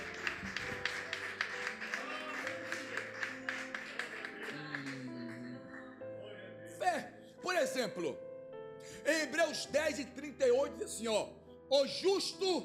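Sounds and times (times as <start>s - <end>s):
audience clapping in a steady rhythmic beat: 0.0s - 5.8s
speech: 7.8s - 8.3s, 9.5s - 12.6s.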